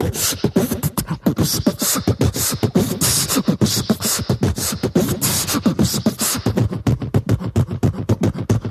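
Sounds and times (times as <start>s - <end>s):
beatbox: 0.0s - 8.6s.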